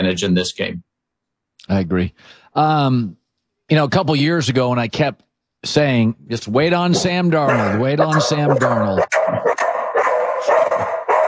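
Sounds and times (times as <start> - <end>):
speech: 0.0 - 0.9, 1.6 - 9.5
dog barking at someone at the door: 7.4 - 11.2.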